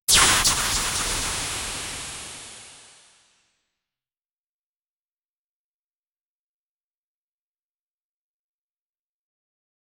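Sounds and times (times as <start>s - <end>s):
superhero shooting a long web: 0.1s - 3.0s.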